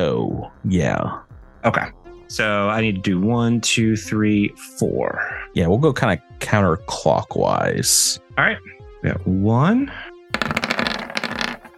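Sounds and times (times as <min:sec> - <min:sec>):
speech: 0:00.4 - 0:10.6
dice clattering and tumbling across a hard surface in a game: 0:10.3 - 0:11.7.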